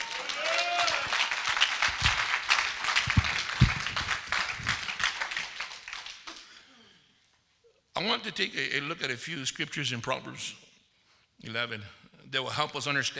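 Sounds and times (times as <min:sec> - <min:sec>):
audience clapping in a dense round of applause: 0:00.0 - 0:06.4
speech: 0:08.0 - 0:10.7, 0:11.4 - 0:13.1.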